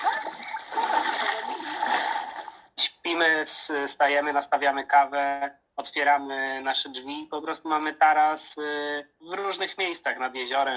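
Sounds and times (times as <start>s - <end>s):
water splashing in a lake during a morning swim: 0.0s - 2.6s
speech: 3.2s - 10.7s.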